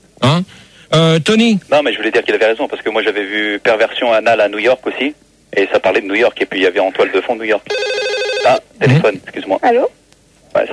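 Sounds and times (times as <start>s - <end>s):
speech: 0.2s - 10.7s
telephone ringing: 7.7s - 8.6s.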